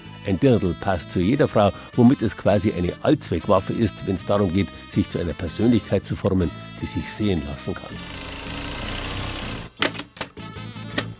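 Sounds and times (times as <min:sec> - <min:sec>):
speech: 0:00.2 - 0:08.3
dressmaker's sewing machine stitching: 0:07.9 - 0:09.8.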